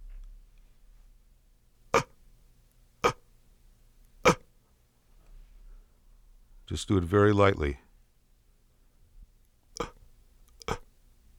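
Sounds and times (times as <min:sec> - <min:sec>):
light inhaled inward coughs made in the throat with the epiglottis: 0:04.2 - 0:04.5
speech: 0:06.7 - 0:07.8.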